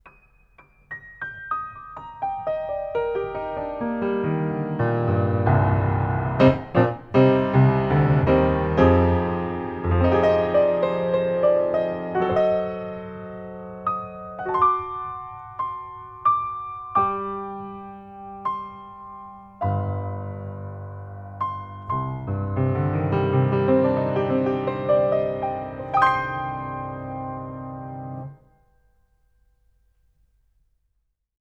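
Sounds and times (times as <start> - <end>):
distant piano: 0.0 - 29.9.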